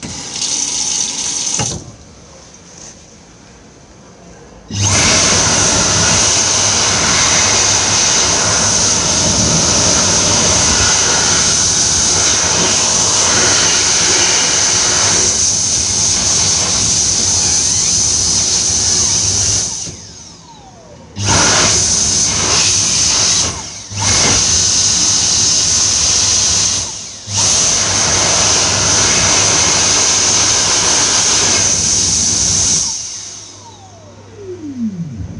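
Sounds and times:
airport hand dryer in Lisbon: 0:00.0 - 0:02.0, 0:04.7 - 0:35.2.

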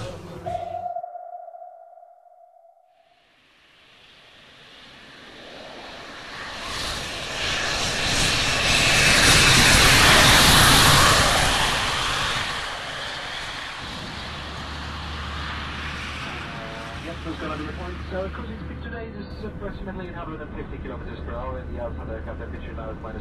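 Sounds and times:
airplane engine roar: 0:00.0 - 0:01.5, 0:03.6 - 0:23.1
brief steady electronic tone: 0:00.0 - 0:03.0.

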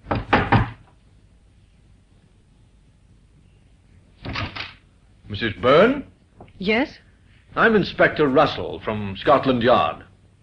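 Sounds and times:
knocking on the door of a small flat: 0:00.0 - 0:00.9
speech: 0:05.3 - 0:10.1.

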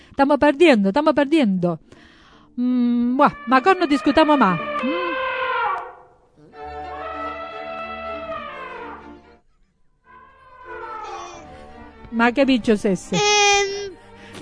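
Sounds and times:
speech: 0:00.2 - 0:05.0, 0:12.1 - 0:13.4
elephant trumpeting: 0:03.2 - 0:09.3, 0:10.0 - 0:11.6.

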